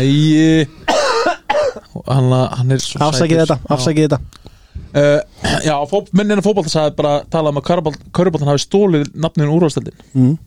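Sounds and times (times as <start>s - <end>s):
speech: 0.0s - 0.8s, 2.0s - 10.4s
boy coughing: 0.9s - 1.9s.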